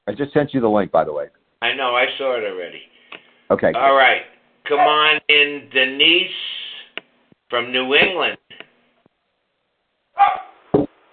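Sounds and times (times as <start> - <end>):
speech: 0.1 - 2.9, 3.5 - 6.6, 7.5 - 8.4
dog barking over an unmuted call line: 10.2 - 10.7.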